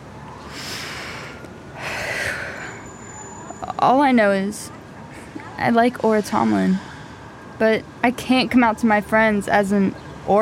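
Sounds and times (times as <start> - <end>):
deep breath drawn in: 0.4 - 3.0, 6.2 - 7.5
speech: 3.8 - 4.8, 5.6 - 6.9, 7.6 - 10.3.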